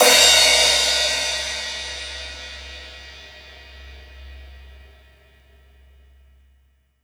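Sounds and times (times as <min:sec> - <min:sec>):
16 inch cymbal crashes: 0:00.0 - 0:05.0.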